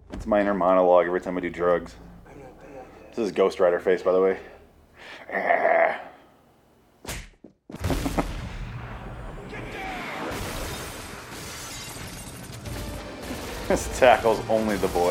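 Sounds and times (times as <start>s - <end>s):
speech: 0.2s - 2.1s, 3.2s - 6.0s, 13.7s - 15.0s
gunfire as agents open fire: 7.8s - 15.0s.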